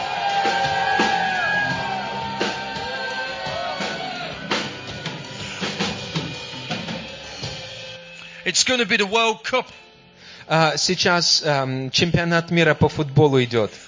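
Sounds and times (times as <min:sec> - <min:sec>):
audience shouting loudly: 0:00.0 - 0:05.8
busy crowd-like noise: 0:00.0 - 0:06.6
speech: 0:08.5 - 0:09.8, 0:10.5 - 0:13.8.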